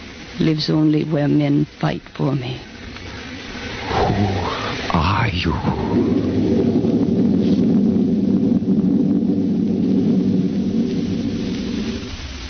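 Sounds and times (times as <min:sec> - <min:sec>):
speech: 0:00.4 - 0:02.7, 0:04.2 - 0:07.1
thunder rolling through a thunderstorm: 0:03.5 - 0:12.4.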